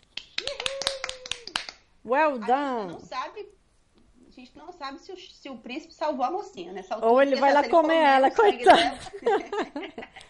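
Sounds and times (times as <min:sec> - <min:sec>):
sharp hand claps: 0:00.0 - 0:01.9
speech: 0:02.0 - 0:03.6, 0:04.4 - 0:10.2
laughter: 0:07.5 - 0:10.2.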